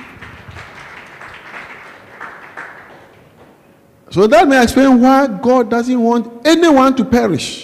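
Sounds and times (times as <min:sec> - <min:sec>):
crowd applauding: 0:00.0 - 0:03.7
speech: 0:04.1 - 0:07.6.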